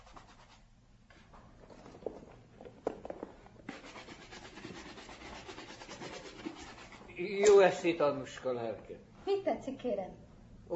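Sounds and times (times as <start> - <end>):
brush scrubbing shoes being cleaned: 3.7 - 7.0
speech: 7.2 - 10.7.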